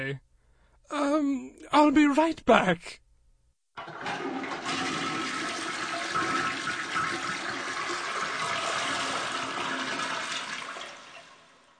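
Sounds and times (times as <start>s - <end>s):
speech: 0.0s - 0.3s, 0.9s - 3.0s
toilet flushing: 3.8s - 11.7s.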